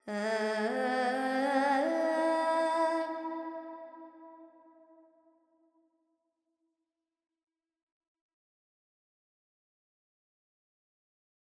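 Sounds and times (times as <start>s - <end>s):
Carnatic woman singing alap in raga Panthuvarali with reverb: 0.0s - 3.6s.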